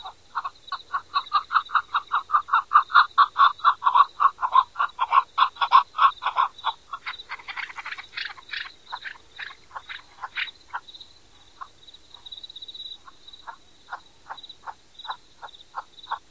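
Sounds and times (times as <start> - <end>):
chukar chuck calls: 0.0 - 16.2.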